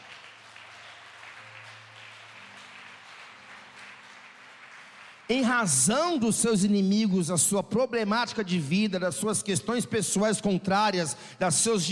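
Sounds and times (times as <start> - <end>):
audience applauding: 0.0 - 6.3
speech: 5.3 - 11.8.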